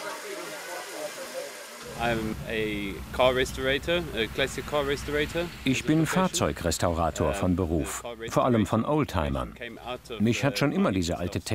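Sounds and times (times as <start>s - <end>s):
1930s steam lorry hissing: 0.0s - 7.2s
low rumble: 1.9s - 8.2s
speech: 2.0s - 11.5s.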